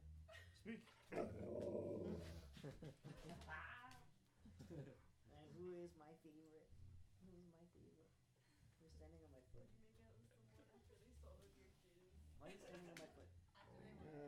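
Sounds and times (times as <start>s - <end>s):
speech: 0.6s - 8.2s, 8.8s - 14.2s
puppy growling: 1.1s - 2.5s.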